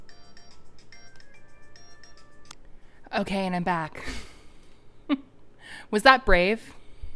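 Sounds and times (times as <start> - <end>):
phone ringtone with electronic melody: 0.0 - 2.5
faint hum: 0.0 - 7.1
speech: 3.2 - 4.3, 5.9 - 6.8.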